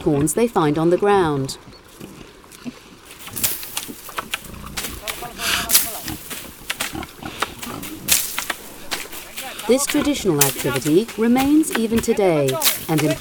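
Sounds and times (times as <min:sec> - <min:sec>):
speech: 0:00.0 - 0:02.8, 0:09.7 - 0:13.1
pigs rooting and rustling: 0:01.9 - 0:13.1
Iberian pigs grunting and snorting in an oak pasture in Cabañeros Park: 0:03.1 - 0:13.1.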